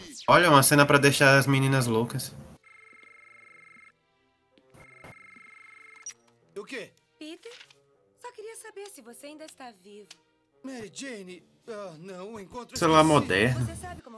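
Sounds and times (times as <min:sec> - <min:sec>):
noise: 0:00.0 - 0:03.8, 0:12.8 - 0:14.1
speech: 0:00.2 - 0:02.4, 0:08.9 - 0:14.1
landline telephone ringing with a long electronic trill: 0:00.3 - 0:03.9, 0:04.8 - 0:06.1, 0:12.8 - 0:14.0
laughter: 0:12.8 - 0:14.0.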